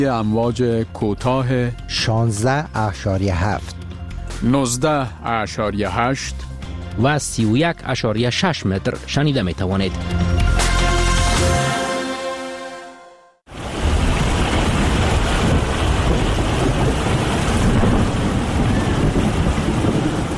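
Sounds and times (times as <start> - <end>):
speech: 0.0 - 3.8, 4.4 - 10.3
sustained tonal chord: 10.5 - 13.4
loud steady downpour of heavy rain: 13.5 - 20.3
low rumbling thunder: 13.6 - 20.3.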